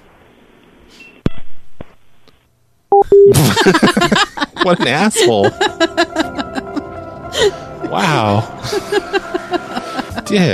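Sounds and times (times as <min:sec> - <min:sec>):
telephone keypad tones during a call: 0:02.9 - 0:03.3
speech: 0:03.3 - 0:05.9, 0:07.4 - 0:10.5
laughter: 0:03.3 - 0:10.5.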